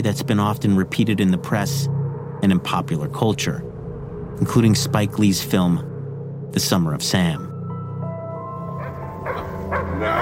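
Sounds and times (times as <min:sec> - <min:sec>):
speech: 0:00.0 - 0:03.7, 0:04.4 - 0:05.9, 0:06.5 - 0:07.5
steady droning tonal background: 0:00.0 - 0:10.2
dog barking: 0:08.8 - 0:10.2.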